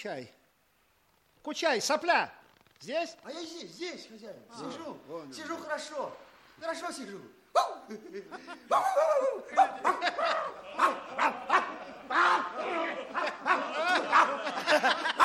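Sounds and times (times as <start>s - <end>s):
speech: 0.0s - 0.4s, 1.4s - 11.5s
dog barking: 7.6s - 7.9s, 9.5s - 11.8s
snickering laughter: 7.8s - 15.2s.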